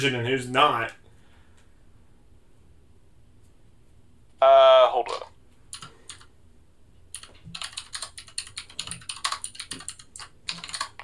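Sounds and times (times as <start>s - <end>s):
speech: 0.0s - 1.0s
fingers typing on a computer keyboard: 5.7s - 6.3s, 7.1s - 11.0s.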